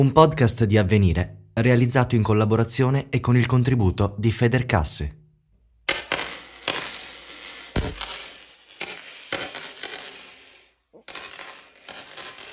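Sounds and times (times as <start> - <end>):
speech: 0.0 - 5.2
coins clinking and jingling: 5.9 - 12.5.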